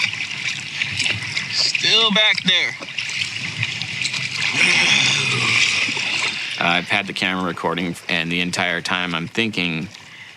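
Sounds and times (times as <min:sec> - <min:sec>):
kayak paddle strokes splashing through water: 0:00.0 - 0:07.7
speech: 0:02.0 - 0:02.9, 0:04.6 - 0:05.4, 0:06.6 - 0:10.0.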